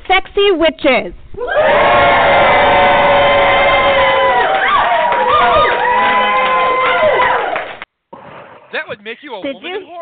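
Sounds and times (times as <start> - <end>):
speech: 0.1 - 2.5, 8.9 - 10.0
overlapping whoops and high-pitched shouts from a convention crowd: 1.4 - 7.6
crowd of 50-plus people cheering at a horror convention panel: 1.4 - 7.9.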